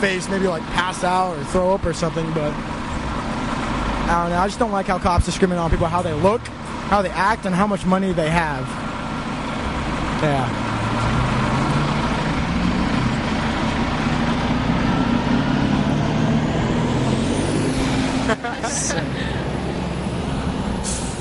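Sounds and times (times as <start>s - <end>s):
speech: 0.0s - 3.0s, 4.1s - 8.8s, 10.2s - 11.4s
bus engine rumbling in Santa Cruz: 0.0s - 21.1s
laughter: 18.0s - 19.5s
bus air brake hiss: 20.8s - 21.1s.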